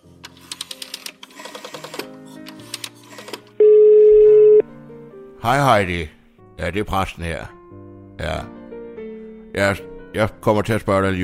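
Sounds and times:
electronic phone beeps and clicks: 3.2 - 4.6
steady telephone ringing tone: 3.6 - 4.7
speech: 5.4 - 7.6, 8.2 - 8.6, 9.6 - 11.2.

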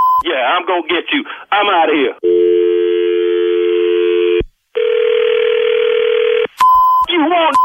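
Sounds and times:
brief higher beep: 0.0 - 0.2
speech: 0.4 - 2.5, 7.2 - 7.6
telephone dial tone: 2.2 - 6.5.

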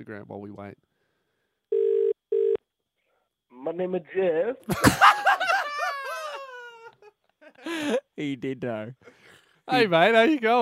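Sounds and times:
speech: 0.0 - 0.9, 3.5 - 5.4, 7.6 - 10.6
electronic ringback tones of an outgoing phone call: 1.7 - 2.6
laughter: 4.7 - 8.1.

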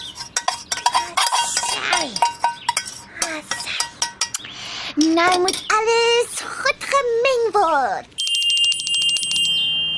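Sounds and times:
metal clinking and scraping on dish: 0.0 - 4.4, 8.2 - 9.9
utensil scraping sticky coconut ice mixture out of a bowl: 0.0 - 4.4
speech: 5.2 - 6.0, 7.0 - 8.2.

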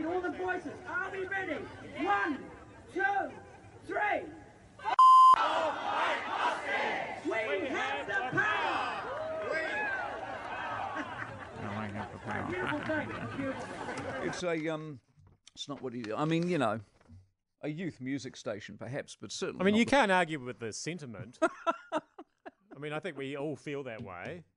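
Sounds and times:
speech: 0.1 - 4.4, 12.2 - 16.9, 17.6 - 22.1, 22.8 - 24.5
large crowd of protesters chanting and shouting on Parliament steps: 4.8 - 9.0
isolated shouts: 4.8 - 11.1
steady electronic beep: 5.0 - 5.4
laughter: 9.6 - 14.4, 21.3 - 23.0.

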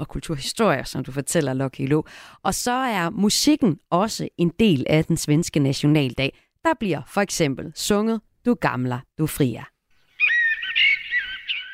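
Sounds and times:
speech: 0.0 - 9.7
bird whistling a warbling phrase of high notes: 10.1 - 11.7.

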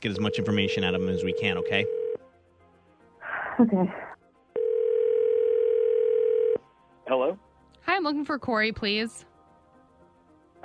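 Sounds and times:
speech: 0.0 - 2.0, 3.6 - 4.1, 7.1 - 9.3
telephone line tone while a call is dialed: 0.2 - 2.2, 4.6 - 6.6.

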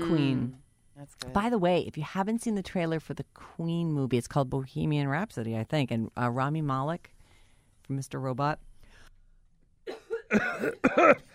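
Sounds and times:
speech: 0.0 - 7.2, 7.9 - 8.7, 9.9 - 11.3
person coughing harshly after inhaling spit: 9.9 - 11.3.

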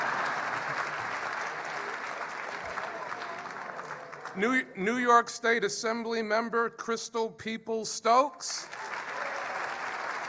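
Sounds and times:
applause from a sizable audience: 0.0 - 5.2, 8.6 - 10.2
speech: 4.4 - 8.8.

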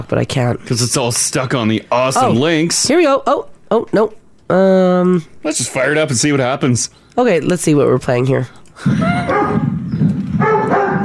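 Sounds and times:
speech: 0.0 - 9.8
dog barking excitedly: 9.2 - 9.7, 10.4 - 11.0.

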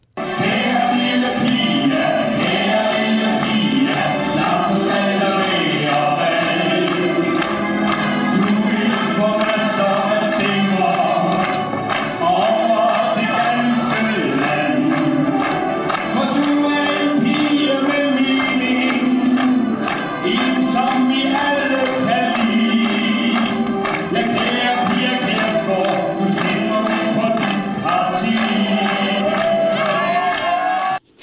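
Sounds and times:
man singing Danish pop song: 0.2 - 7.7, 8.3 - 30.3.

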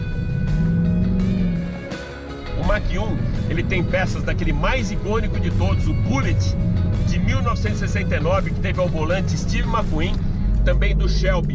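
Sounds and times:
road and tire noise: 0.0 - 11.5
sports car engine rumble while braking through a curve: 0.0 - 11.5
speech: 2.8 - 11.5.

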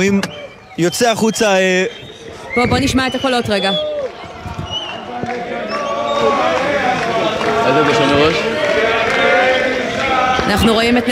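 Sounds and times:
speech: 0.0 - 2.0, 2.6 - 3.9, 10.5 - 11.1
outdoor crowd of 100 to 200 people cheering and shouting: 0.0 - 11.1
people clapping: 3.1 - 11.1.

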